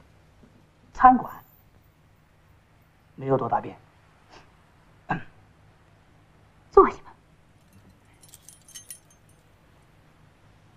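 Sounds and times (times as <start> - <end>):
speech: 1.0 - 1.4, 3.2 - 3.8
small bunch of keys jingling as they are handed over: 7.6 - 9.8.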